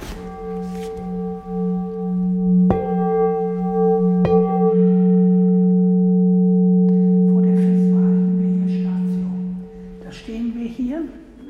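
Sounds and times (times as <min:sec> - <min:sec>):
rustling: 0:00.0 - 0:05.0
gong struck to call monks to prayer: 0:00.0 - 0:11.4.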